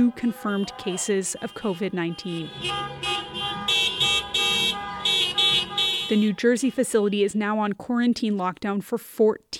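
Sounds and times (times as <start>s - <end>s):
speech: 0.0s - 3.8s, 6.1s - 9.5s
car horns honking at a protest: 0.0s - 7.3s.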